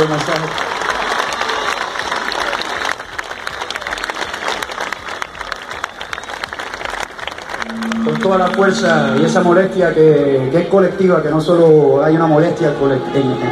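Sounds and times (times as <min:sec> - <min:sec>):
speech: 0:00.0 - 0:00.7, 0:08.2 - 0:13.4
audience applause after a speech at a gathering: 0:00.0 - 0:09.4.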